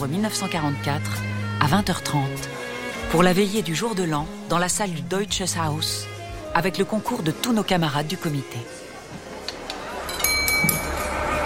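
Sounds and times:
speech: 0.0s - 8.8s
low murmur of voices: 6.6s - 11.4s
glasses clinking in a toast to the coming year: 10.0s - 11.2s.

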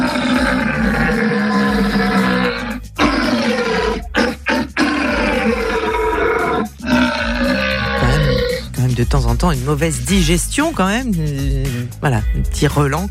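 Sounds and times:
red deer stag bellowing during the rut: 0.0s - 8.7s
speech: 9.0s - 13.0s.

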